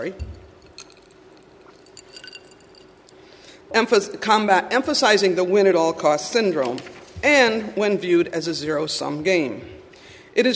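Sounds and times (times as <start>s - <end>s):
speech: 0.0s - 0.4s, 3.7s - 9.8s, 10.4s - 10.5s
steady low hum: 0.0s - 10.5s
glass of water clinking: 0.1s - 3.4s.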